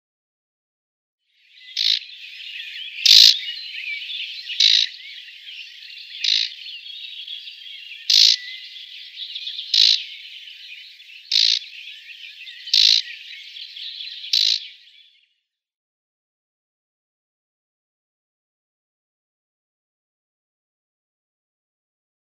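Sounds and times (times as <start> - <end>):
marsh warbler rattle calls: 1.6 - 14.8.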